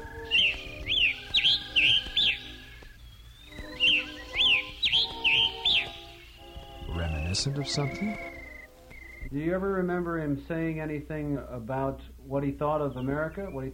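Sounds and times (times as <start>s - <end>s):
faint steady tones: 0.0s - 13.7s
scarlet tanager singing hoarse burry whistled phrases: 0.0s - 13.7s
speech: 7.4s - 8.3s, 9.3s - 13.7s.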